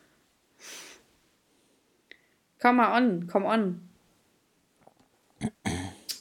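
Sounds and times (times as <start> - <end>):
speech: 2.6 - 3.9
person clearing throat: 5.4 - 6.2.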